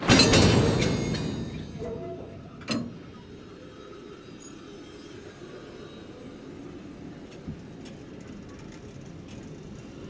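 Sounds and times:
train shunting on track: 0.0 - 5.6.

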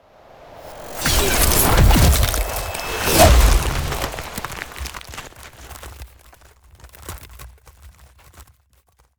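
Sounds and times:
ice spell ultimate sound effect: 0.6 - 6.0.

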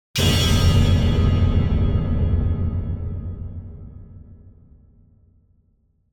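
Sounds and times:
strong metal impact hit: 0.2 - 5.2.

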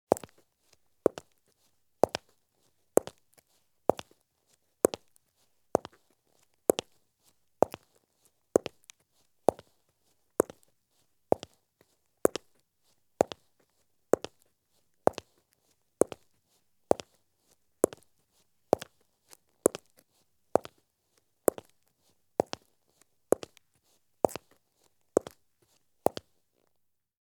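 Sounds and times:
women's heavy high heel shoes walking at medium pace on concrete: 0.1 - 0.4, 1.0 - 1.4, 2.0 - 2.4, 3.0 - 4.2, 4.8 - 6.1, 6.7 - 7.0, 7.6 - 8.0, 8.6 - 9.8, 10.4 - 10.7, 11.3 - 11.6, 12.2 - 12.6, 13.2 - 13.5, 14.1 - 15.4, 16.0 - 17.2, 17.8 - 18.1, 18.7 - 20.8, 21.4 - 24.6, 25.2 - 26.4.

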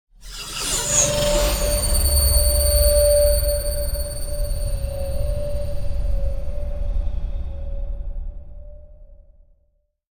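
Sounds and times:
scary feedback drone logo: 0.3 - 7.6.

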